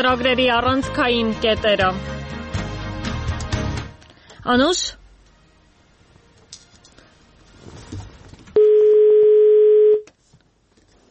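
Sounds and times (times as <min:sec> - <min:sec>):
speech: 0:00.0 - 0:02.4, 0:04.4 - 0:05.0
telephone dial tone from a failed phone connection: 0:08.6 - 0:10.1.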